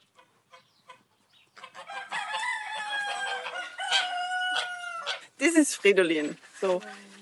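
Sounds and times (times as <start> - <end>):
chicken clucking: 0.0 - 5.2
rooster crowing: 1.8 - 5.2
speech: 5.4 - 7.1.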